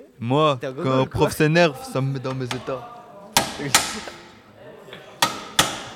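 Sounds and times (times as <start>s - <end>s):
speech: 0.2s - 3.0s, 3.6s - 4.2s
hammer striking: 3.4s - 4.4s, 5.2s - 5.9s.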